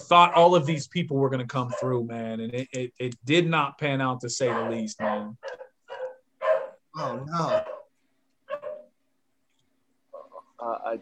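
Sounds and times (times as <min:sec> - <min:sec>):
speech: 0:00.1 - 0:05.4, 0:07.0 - 0:07.7, 0:10.6 - 0:11.0
dogs barking: 0:00.2 - 0:00.7, 0:01.6 - 0:02.0, 0:04.4 - 0:09.0.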